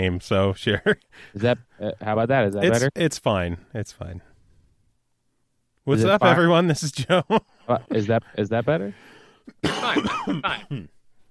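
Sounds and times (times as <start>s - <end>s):
speech: 0.0s - 4.3s, 5.8s - 11.0s
person recovering from an illness coughing: 9.5s - 11.0s.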